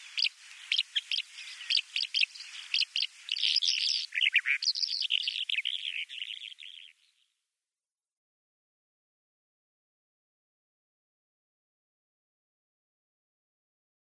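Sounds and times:
bimaculated lark singing scratchy twittering song: 0.0s - 7.3s.

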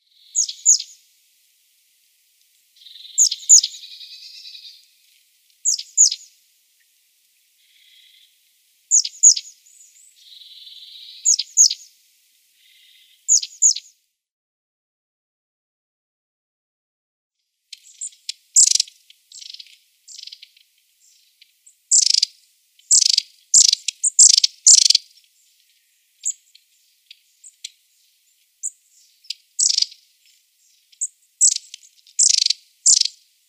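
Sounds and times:
Long-tailed Tit calls: 0.0s - 1.0s, 2.8s - 6.4s, 7.6s - 12.0s, 12.6s - 14.0s, 17.7s - 33.2s.

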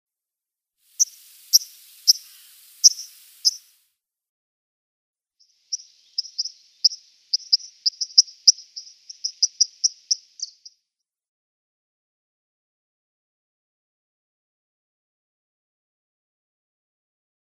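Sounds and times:
White-throated Dipper calls: 1.0s - 3.6s, 5.8s - 10.6s.

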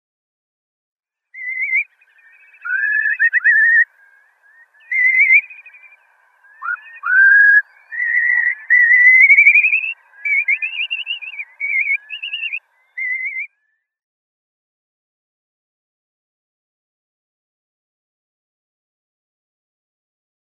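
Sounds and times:
Slender-billed Curlew calling in Morocco: 1.4s - 13.8s.

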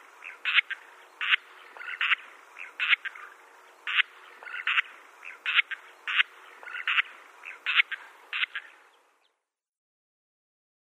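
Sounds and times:
steady low background hum: 0.0s - 9.4s
Sociable lapwing flock harsh rattling calls: 0.2s - 8.8s.

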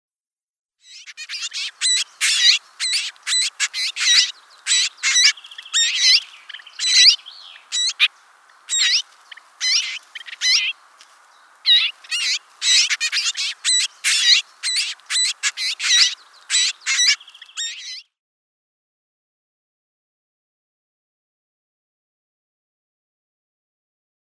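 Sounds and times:
Garden Warbler nestlings calling: 0.8s - 18.0s.

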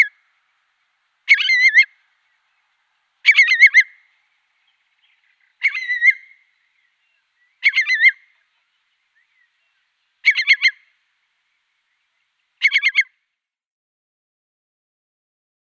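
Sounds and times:
Eurasian curlew calls: 0.0s - 0.2s, 1.3s - 2.0s, 3.2s - 4.1s, 5.4s - 6.5s, 7.5s - 8.5s, 10.2s - 10.9s, 12.6s - 13.1s.

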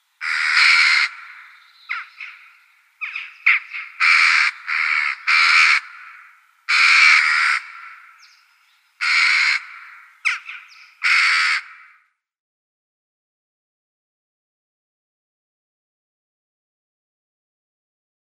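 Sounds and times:
Western jackdaw calls: 0.0s - 12.1s.

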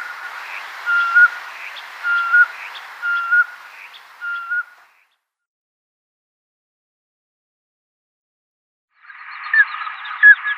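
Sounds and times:
Common scoter males piping whistles: 0.8s - 4.8s.

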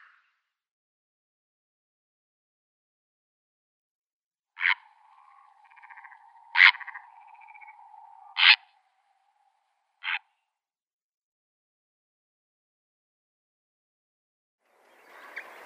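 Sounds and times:
purple heron croaking: 4.6s - 9.1s, 10.0s - 10.4s.

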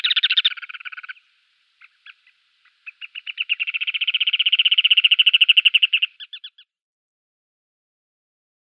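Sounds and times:
Ruddy turnstone giving harsh chattering calls: 0.0s - 1.2s, 1.8s - 6.7s.

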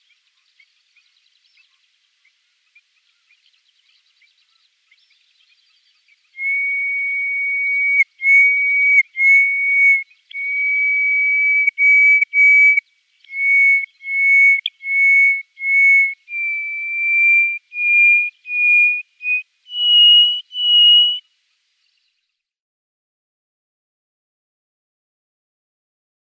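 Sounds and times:
Hoopoe lark song of piping whistles: 6.4s - 21.2s.

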